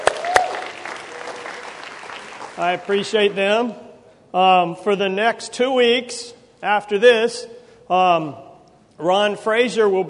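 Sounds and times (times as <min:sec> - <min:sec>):
sharp claps: 0:00.0 - 0:02.8
audience applause at a class session: 0:00.0 - 0:03.4
speech: 0:02.6 - 0:10.0.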